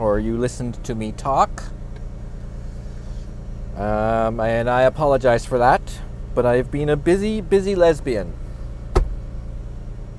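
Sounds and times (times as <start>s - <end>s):
car being driven: 0.0s - 10.1s
speech: 0.2s - 1.8s, 3.8s - 8.4s
brief broadband thump: 8.9s - 9.2s.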